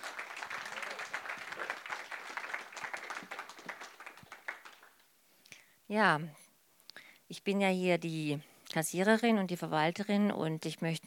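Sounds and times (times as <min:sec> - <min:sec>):
room full of people applauding: 0:00.0 - 0:05.1
speech: 0:05.9 - 0:06.4, 0:07.4 - 0:11.0.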